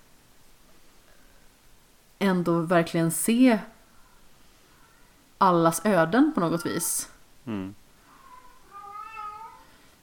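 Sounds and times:
speech: 2.2s - 3.7s, 5.4s - 7.8s
cat meowing: 8.0s - 9.7s.

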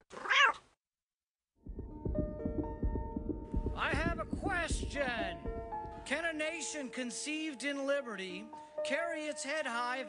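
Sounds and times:
cat meowing: 0.0s - 0.6s
dense busy clamor of overlapping sounds: 1.7s - 6.5s
speech: 3.8s - 10.0s.

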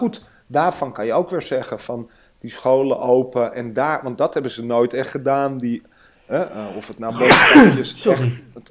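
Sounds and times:
speech: 0.0s - 8.6s
person sneezing: 6.4s - 8.4s.

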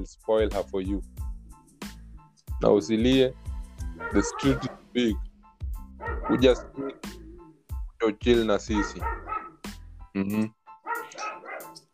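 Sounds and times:
speech: 0.0s - 1.2s, 2.6s - 5.2s, 6.0s - 7.2s, 8.0s - 9.3s, 10.1s - 10.6s
dogs barking: 3.9s - 4.9s, 5.9s - 7.6s, 8.6s - 9.6s, 10.8s - 11.9s.

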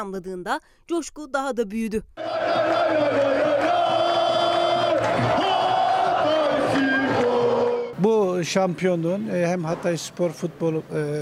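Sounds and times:
speech: 0.0s - 4.3s, 8.0s - 11.2s
football fans chanting and cheering outdoors in a city square: 2.2s - 8.0s
football fans shouting: 2.2s - 8.0s.

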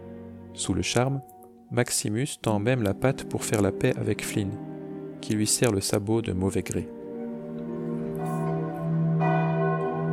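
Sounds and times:
speech: 0.6s - 7.0s
citadel church bells ringing at sunrise: 7.2s - 10.1s.

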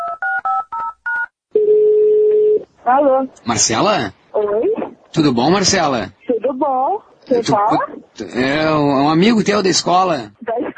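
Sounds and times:
telephone dialing tones: 0.0s - 2.6s
speech: 2.9s - 10.4s.

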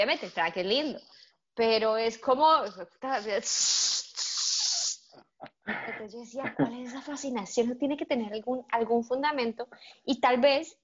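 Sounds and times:
speech: 0.0s - 4.0s, 5.2s - 10.8s
voice imitating aerosol spray hiss: 3.1s - 5.1s.

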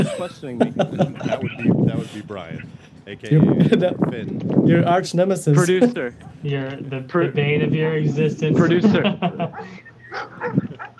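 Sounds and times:
laughter: 0.0s - 2.7s, 3.3s - 4.0s, 8.6s - 10.9s
speech: 0.2s - 10.9s
dogs barking: 9.4s - 10.9s.

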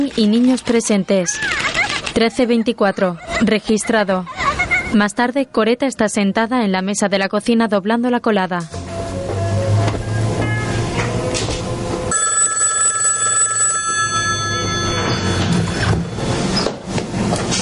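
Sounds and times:
speech: 0.0s - 8.8s
dense noisy background: 0.0s - 17.5s
laughter: 1.2s - 5.1s
telephone ringing in the kitchen of a family home in Atlanta: 12.1s - 16.6s.

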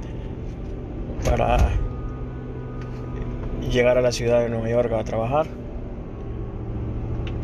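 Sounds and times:
passing car traffic on a road: 0.0s - 7.4s
speech: 1.2s - 1.9s, 3.6s - 5.6s.

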